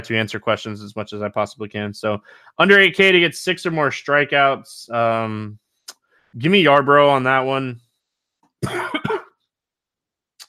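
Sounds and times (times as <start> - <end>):
speech: 0.0 - 5.6, 6.3 - 7.8, 8.6 - 9.1
faint breath: 2.2 - 2.6, 6.0 - 6.4
person coughing: 8.6 - 9.4.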